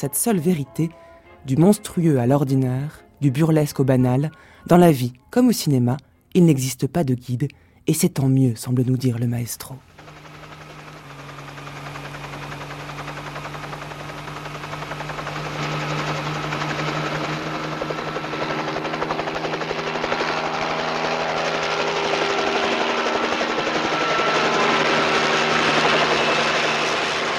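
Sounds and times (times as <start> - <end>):
speech: 0.0 - 9.9
helicopter flying overhead carrying a statue: 9.8 - 27.3.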